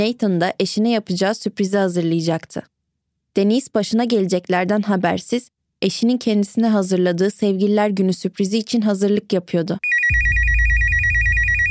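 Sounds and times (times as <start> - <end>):
speech: 0.0 - 2.7, 3.4 - 10.3
telephone ringing with an electronic trill: 9.8 - 11.6
low rumbling hum: 10.1 - 11.6.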